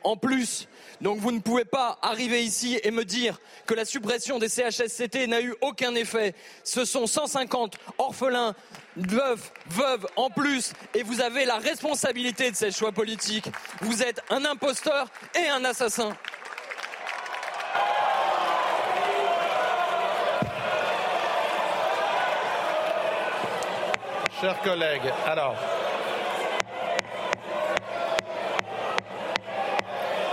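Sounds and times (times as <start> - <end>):
speech: 0.0 - 16.4, 24.4 - 25.8
lawmakers in a parliament shouting in French: 17.4 - 30.3.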